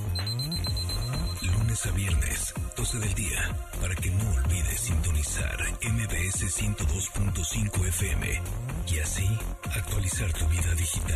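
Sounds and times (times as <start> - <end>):
smart device alarm ringing: 0.1 - 1.7
speech: 2.9 - 11.1.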